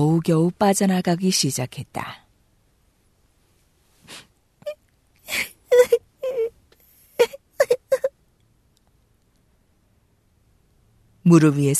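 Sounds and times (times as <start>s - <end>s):
speech: 0.0s - 2.2s, 11.2s - 11.7s
young girl sobbing on a lap: 4.6s - 6.6s, 7.2s - 8.1s.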